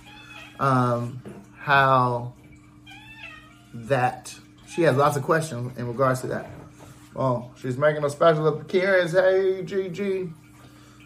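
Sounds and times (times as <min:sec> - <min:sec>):
loud drawn-out cat meow: 0:00.0 - 0:00.6, 0:02.9 - 0:03.8
speech: 0:00.6 - 0:02.4, 0:03.8 - 0:10.4.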